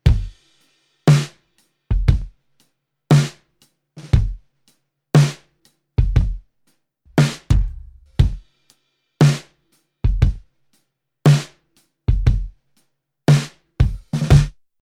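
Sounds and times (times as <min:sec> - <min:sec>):
snare drum with effect: 0:01.1 - 0:01.4, 0:03.1 - 0:03.4, 0:05.2 - 0:05.5, 0:07.1 - 0:08.6, 0:09.2 - 0:09.6, 0:11.3 - 0:11.6, 0:13.3 - 0:14.6
kick drum with effect: 0:01.9 - 0:02.3, 0:04.1 - 0:04.4, 0:06.0 - 0:06.5, 0:07.1 - 0:08.4, 0:10.1 - 0:10.5, 0:12.1 - 0:12.6, 0:13.8 - 0:14.6.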